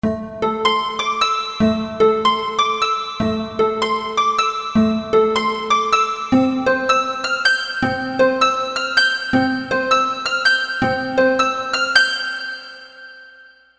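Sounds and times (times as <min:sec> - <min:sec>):
D-50 synthesizer harp: 0:00.1 - 0:13.4.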